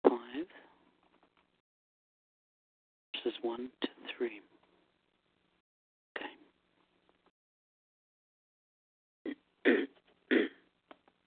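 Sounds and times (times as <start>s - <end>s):
speech: 3.2s - 4.5s
person clearing a tickle from their throat: 9.3s - 10.6s.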